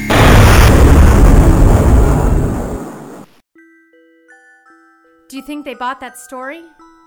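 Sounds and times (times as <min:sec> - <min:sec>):
loud roaring explosion of a machine hit by lasers: 0:00.0 - 0:03.3
speech: 0:05.4 - 0:06.8.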